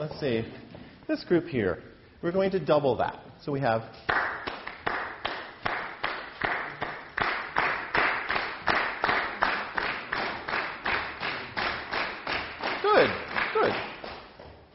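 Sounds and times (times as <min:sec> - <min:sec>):
speech: 0:00.0 - 0:04.2
group clapping in a steady even rhythm: 0:04.0 - 0:14.4.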